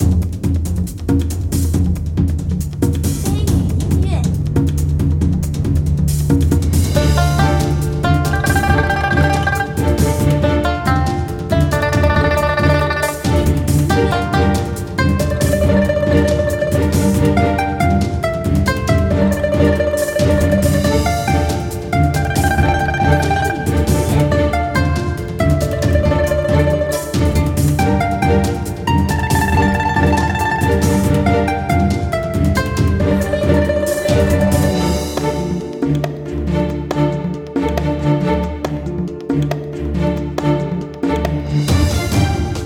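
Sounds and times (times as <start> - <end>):
ordinary battle music: 0.0 - 42.6.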